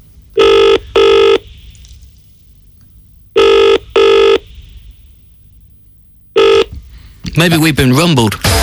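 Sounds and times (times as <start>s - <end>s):
telephone ringing with electronic trills: 0.4s - 1.4s, 3.4s - 4.4s, 6.4s - 6.7s
speech: 7.4s - 8.6s.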